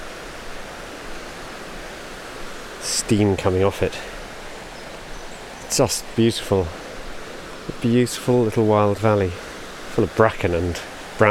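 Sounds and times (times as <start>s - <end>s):
stream water pouring out from under a canal: 0.0s - 11.2s
speech: 2.8s - 4.2s, 5.7s - 6.8s, 7.8s - 9.4s, 10.0s - 11.2s.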